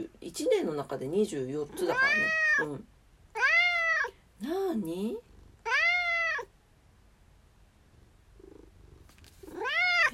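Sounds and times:
speech: 0:00.0 - 0:03.0, 0:04.4 - 0:05.3
cat meowing loudly: 0:01.9 - 0:02.7, 0:03.3 - 0:04.1, 0:05.6 - 0:06.5, 0:09.5 - 0:10.1.

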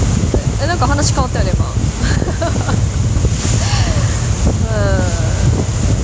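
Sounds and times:
roaring wind on an open ferry deck buffeting the microphone: 0:00.0 - 0:06.0
rushing sea noise from an open ferry deck: 0:00.0 - 0:06.0
speech: 0:00.8 - 0:02.9, 0:04.8 - 0:05.6
laughter: 0:02.0 - 0:02.8.

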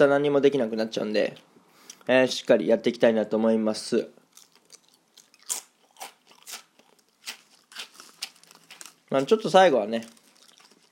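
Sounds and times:
speech: 0:00.0 - 0:01.5, 0:02.1 - 0:04.2, 0:09.1 - 0:10.2
chewing crunchy food: 0:04.2 - 0:09.2, 0:10.1 - 0:10.9.

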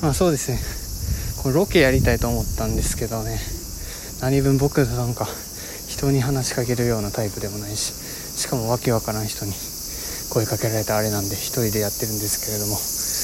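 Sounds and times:
speech: 0:00.0 - 0:00.8, 0:01.4 - 0:03.6, 0:04.2 - 0:09.7, 0:10.3 - 0:12.9
cicadas droning loudly outdoors: 0:00.0 - 0:13.2.

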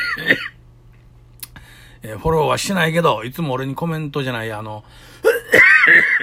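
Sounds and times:
person coughing: 0:00.0 - 0:00.6, 0:05.2 - 0:06.2
speech: 0:00.2 - 0:00.5, 0:02.0 - 0:06.2.

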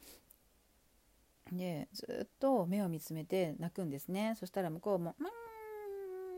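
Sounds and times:
speech: 0:01.5 - 0:05.4
person imitating the growl of an angry cat: 0:05.2 - 0:06.3.

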